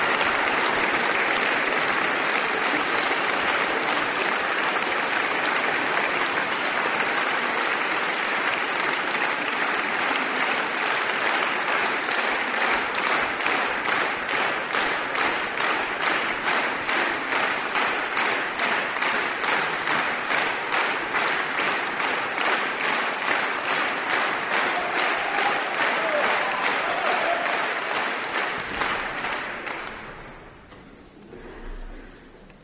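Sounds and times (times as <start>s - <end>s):
crowd rhythmic clapping in unison: 0.0s - 30.8s
orchestral concert audience applause for the soloist: 0.0s - 32.2s.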